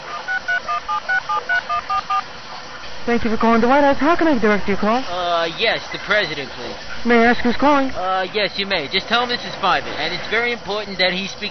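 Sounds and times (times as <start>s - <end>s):
cell phone keypad beeps while speed dialing: 0.3s - 2.2s
speech: 3.1s - 11.4s.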